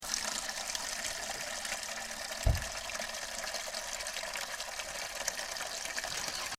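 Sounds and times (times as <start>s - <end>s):
spring water flowing: 0.0s - 6.5s.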